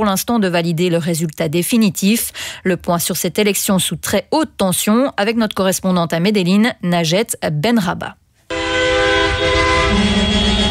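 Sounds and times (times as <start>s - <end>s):
speech: 0.0s - 8.2s
car horns honking in street celebrations after an election result in Colombia: 8.5s - 10.6s
street noise rumble: 9.2s - 10.6s.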